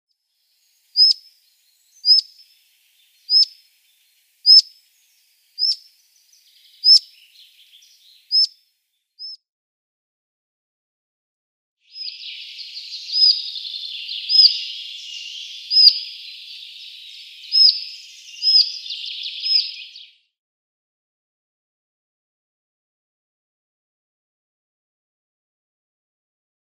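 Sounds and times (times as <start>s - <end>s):
Collared Flycatcher calls: 0.6s - 8.6s, 11.9s - 20.2s.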